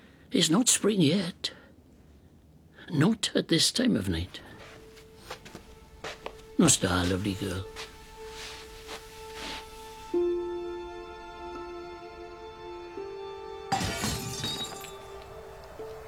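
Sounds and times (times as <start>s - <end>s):
speech: 0.3s - 1.6s, 2.9s - 4.5s, 6.6s - 7.9s
glass fragments tinkling: 13.7s - 15.2s
glass shattering in a flat across the road: 13.7s - 15.2s.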